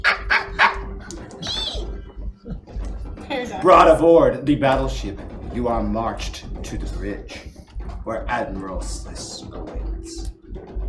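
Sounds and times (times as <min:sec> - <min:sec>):
human voice imitating prairie dog squeaks: 0:00.0 - 0:02.1
low rumble: 0:00.0 - 0:10.8
speech: 0:03.5 - 0:07.4, 0:08.0 - 0:10.3.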